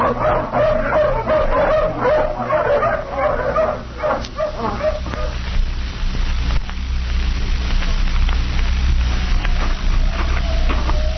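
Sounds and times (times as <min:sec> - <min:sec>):
pack of hounds barking and yipping after release from the leash: 0:00.0 - 0:05.4, 0:09.5 - 0:11.1
steady low rumble: 0:00.0 - 0:11.1.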